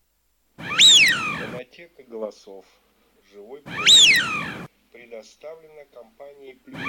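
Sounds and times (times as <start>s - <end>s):
Eurasian wigeon whistled call: 0.6s - 1.6s, 3.7s - 4.7s.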